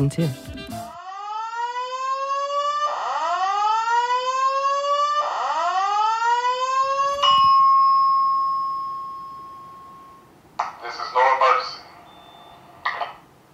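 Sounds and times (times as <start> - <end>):
speech: 0.0 - 0.5
hotel fire alarm blaring: 0.9 - 10.3.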